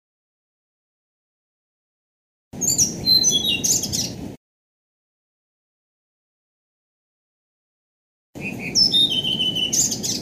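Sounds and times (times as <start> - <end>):
Blue-throated flycatcher singing high sweet whistles: 2.6 - 4.1, 8.4 - 10.2.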